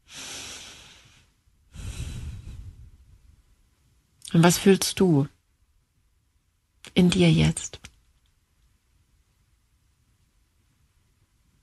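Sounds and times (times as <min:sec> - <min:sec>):
slow breathing in and out: 0:00.0 - 0:03.1
speech: 0:04.3 - 0:05.4, 0:07.0 - 0:07.8.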